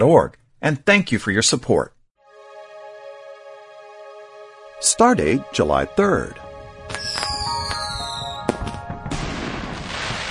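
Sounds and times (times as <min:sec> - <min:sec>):
speech: 0:00.0 - 0:02.0, 0:04.8 - 0:06.4
dense continuous firework crackling: 0:06.9 - 0:08.0, 0:09.1 - 0:10.3
descending firework whistle: 0:06.9 - 0:08.7
firework pops: 0:06.9 - 0:10.3
sharp firework bang: 0:09.1 - 0:10.3.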